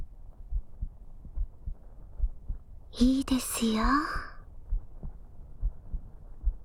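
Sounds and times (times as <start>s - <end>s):
faint hum: 0.0s - 6.6s
heartbeat heard through a chest: 0.0s - 6.6s
speech: 3.0s - 4.2s.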